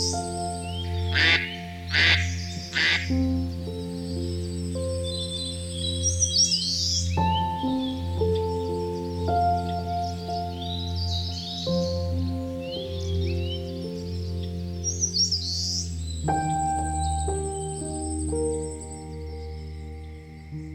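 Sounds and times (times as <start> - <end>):
soft steady music: 0.0 - 20.7
duck quacking: 1.1 - 3.1.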